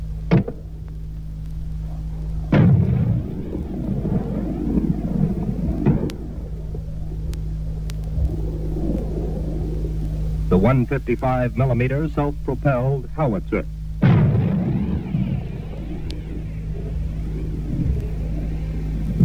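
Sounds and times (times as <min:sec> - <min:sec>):
long rolling low rumble trailing recoilless rifle blasts: 0:00.0 - 0:19.2
steady hum: 0:00.0 - 0:19.2
M40A1 106 mm recoilless rifle firing: 0:02.5 - 0:06.3, 0:14.0 - 0:17.4
speech: 0:10.6 - 0:13.8.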